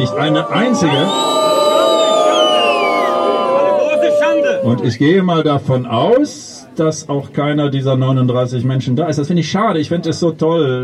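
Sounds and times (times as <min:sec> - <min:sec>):
speech: 0:00.0 - 0:01.5, 0:04.6 - 0:10.8
audience cheering with whoops and shouts: 0:00.0 - 0:05.1.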